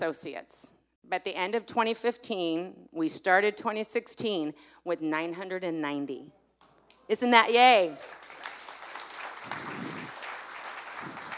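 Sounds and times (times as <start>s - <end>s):
speech: 0.0s - 6.4s, 7.1s - 8.3s, 9.5s - 10.1s
audience applause: 7.9s - 11.3s.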